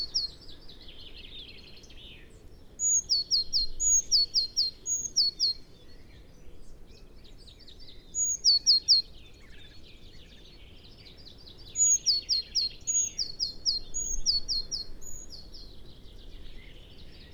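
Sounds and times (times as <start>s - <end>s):
Eurasian blue tit Cyanistes caeruleus singing: 0.0s - 17.3s.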